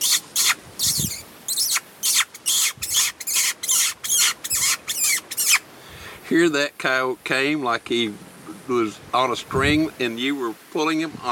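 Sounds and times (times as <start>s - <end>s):
person squeaking with the mouth imitating a small rodent to lure a coyote: 0.0s - 5.6s
speech: 6.3s - 11.3s.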